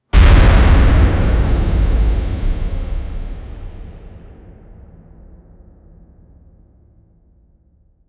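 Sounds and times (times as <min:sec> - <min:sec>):
viking horn impact: 0:00.1 - 0:04.3.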